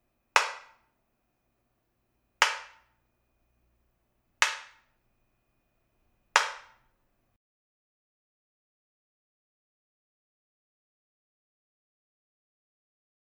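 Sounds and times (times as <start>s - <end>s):
samba tamborim snap: 0.4s - 0.8s, 2.4s - 2.8s, 4.4s - 4.8s, 6.4s - 6.8s.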